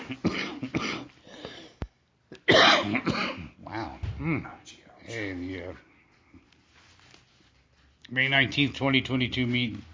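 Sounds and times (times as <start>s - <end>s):
person coughing: 0.0s - 1.7s, 2.3s - 3.6s
speech: 0.1s - 0.7s, 4.2s - 4.6s, 5.2s - 5.9s, 8.1s - 9.9s.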